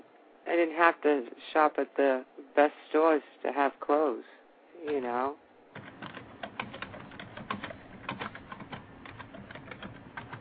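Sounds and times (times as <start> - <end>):
faint hum: 0.0 - 10.3
speech: 0.6 - 6.0
typing on a computer keyboard: 5.8 - 10.3.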